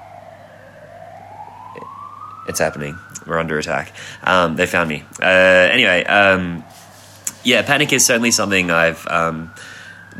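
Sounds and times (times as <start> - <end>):
emergency siren wailing: 0.0 - 10.1
speech: 2.5 - 6.8, 7.4 - 10.1.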